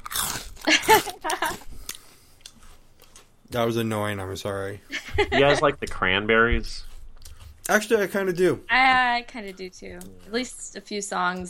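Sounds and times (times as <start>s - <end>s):
crunchy snack being chewed: 0.0s - 3.3s, 6.8s - 7.8s
laughter: 0.7s - 1.6s, 4.9s - 5.9s
speech: 0.7s - 1.6s, 3.5s - 6.9s, 7.7s - 11.4s.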